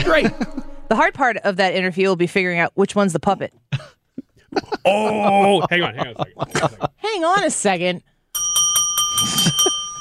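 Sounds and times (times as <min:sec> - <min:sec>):
laughter: 0:00.0 - 0:00.8, 0:04.2 - 0:07.7
speech: 0:00.0 - 0:08.1
small bell struck in a studio: 0:08.4 - 0:09.9.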